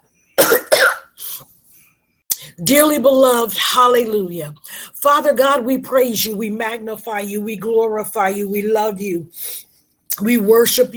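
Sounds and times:
person coughing: 0:00.4 - 0:01.4
speech: 0:02.6 - 0:09.6, 0:10.2 - 0:10.9.

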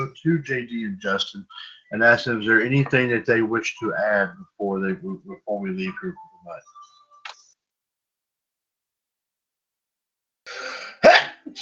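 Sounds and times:
speech: 0:00.1 - 0:06.8, 0:10.6 - 0:11.6
person sneezing: 0:10.5 - 0:11.6.

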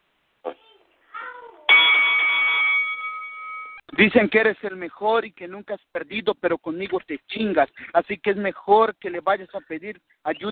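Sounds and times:
bell struck to start the round: 0:01.7 - 0:03.9
speech: 0:04.0 - 0:10.5.

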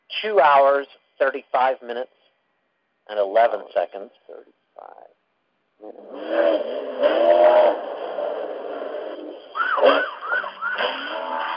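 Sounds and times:
speech: 0:00.2 - 0:02.2, 0:03.1 - 0:05.1, 0:05.8 - 0:07.9
emergency vehicle sirens wailing and yelping: 0:07.0 - 0:11.5.

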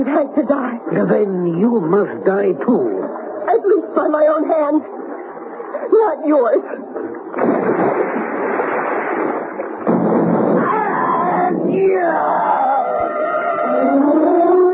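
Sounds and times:
speech: 0:00.0 - 0:05.0, 0:05.8 - 0:08.0, 0:11.7 - 0:13.3
rumbling noise: 0:07.2 - 0:13.4
old-fashioned cannon firing: 0:07.4 - 0:10.7
rising wailing tones: 0:10.5 - 0:14.7.

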